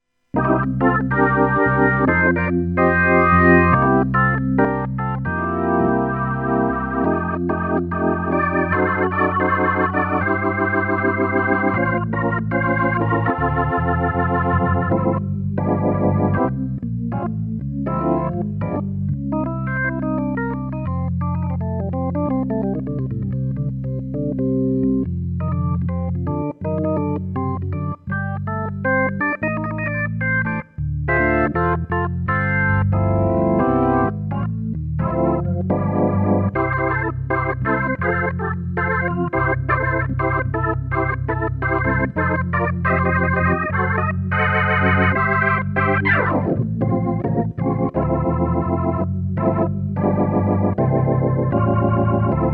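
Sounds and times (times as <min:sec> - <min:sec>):
organ: 0:00.3 - 0:52.5.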